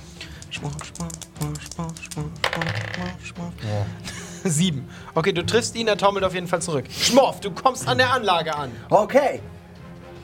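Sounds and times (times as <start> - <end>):
dice clattering and tumbling across a hard surface: 0.3 - 3.2
speech: 0.6 - 9.6.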